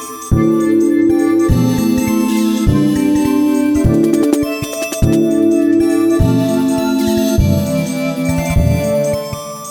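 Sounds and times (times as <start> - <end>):
cymbals: 0.4 - 9.6.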